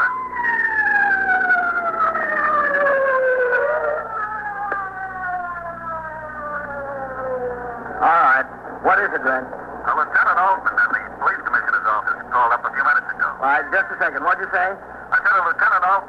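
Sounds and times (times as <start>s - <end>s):
ambulance siren wailing: 0.0s - 9.0s
traffic rumble: 0.0s - 16.0s.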